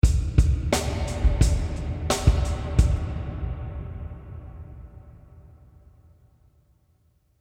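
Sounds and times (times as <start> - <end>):
drums with long reverb: 0.0 - 5.6.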